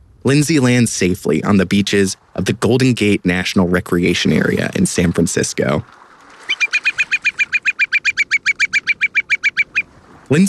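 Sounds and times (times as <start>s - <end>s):
speech: 0.2s - 6.0s, 10.3s - 10.4s
whimbrel giving a rapid rippling series of whistled notes: 6.4s - 9.9s.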